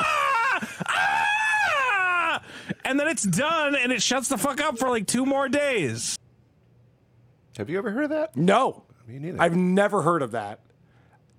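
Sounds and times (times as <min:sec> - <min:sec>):
human voice imitating a screaming cat with a strained wail: 0:00.0 - 0:02.4
speech: 0:02.9 - 0:06.2, 0:07.6 - 0:10.7.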